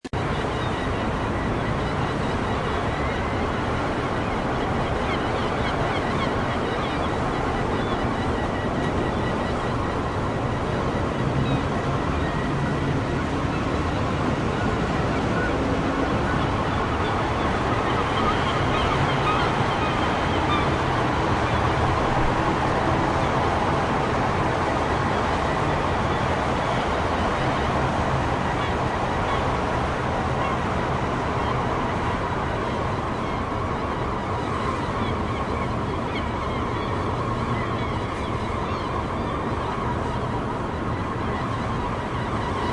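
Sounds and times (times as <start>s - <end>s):
weird echoing seagull calls: 0.2s - 42.7s.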